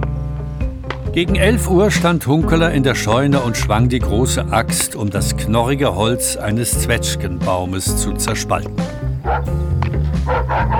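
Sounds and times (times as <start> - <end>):
speech: 1.2 - 10.7
dog yapping outside: 9.2 - 9.5, 10.1 - 10.7.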